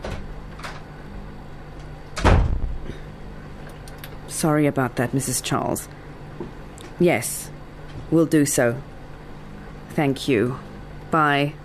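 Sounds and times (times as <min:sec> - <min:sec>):
door opening and shutting with a thud: 0:00.0 - 0:00.8, 0:02.1 - 0:02.8
speech: 0:04.4 - 0:08.9, 0:10.0 - 0:11.6.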